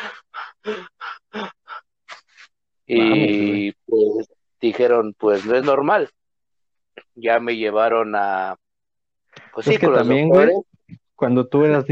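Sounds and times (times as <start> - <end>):
voice imitating labored wheezing breathing of a child out of breath: 0.0 - 2.6
speech: 0.1 - 1.5, 2.9 - 6.2, 7.2 - 8.6, 9.6 - 11.9.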